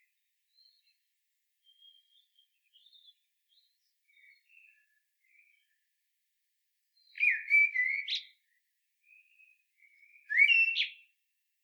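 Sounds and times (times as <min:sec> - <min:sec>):
common blackbird Turdus merula warbling whistled phrase: 0:10.3 - 0:11.0.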